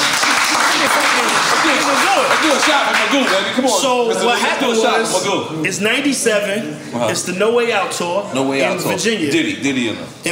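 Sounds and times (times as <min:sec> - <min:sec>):
many hands clapping: 0:00.0 - 0:03.8
speech: 0:02.4 - 0:10.3.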